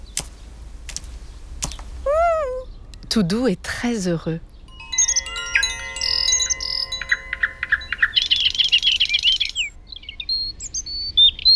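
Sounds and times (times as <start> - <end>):
tit pecking at seeds: 0.0 - 2.0
faint low rumble: 0.0 - 11.5
several birds chirping and trilling: 0.0 - 11.5
speech: 3.1 - 4.5.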